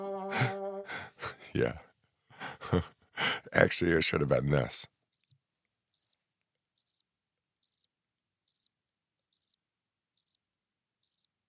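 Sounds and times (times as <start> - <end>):
speech: 0.3 - 0.6, 1.5 - 1.8, 2.7 - 5.0
cricket chirping: 5.1 - 5.3, 5.9 - 6.2, 6.8 - 7.0, 7.6 - 7.9, 8.5 - 8.7, 9.3 - 9.6, 10.2 - 10.4, 11.0 - 11.3.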